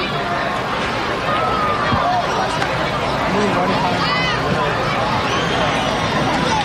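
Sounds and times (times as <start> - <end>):
crowd chatter in a ballpark: 0.0 - 6.6
whistles: 5.2 - 6.2.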